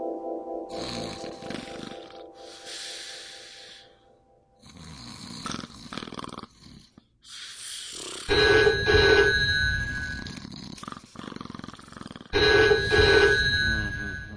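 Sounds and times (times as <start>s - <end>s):
person snoring while sleeping: 0.7s - 4.0s, 4.6s - 8.3s, 10.2s - 12.4s
hotel telephone bell ringing for wake-up call: 8.3s - 10.4s, 12.4s - 14.3s.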